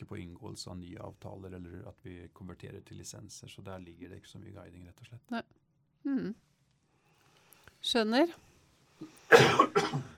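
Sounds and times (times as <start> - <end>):
speech: 0.2 - 6.5, 7.8 - 10.1
person coughing harshly close to the microphone: 9.3 - 10.1.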